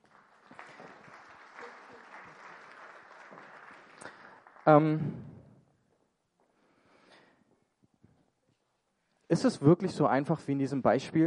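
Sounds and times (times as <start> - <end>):
audience applause: 0.0 - 5.1
speech: 4.7 - 5.2, 9.3 - 11.2.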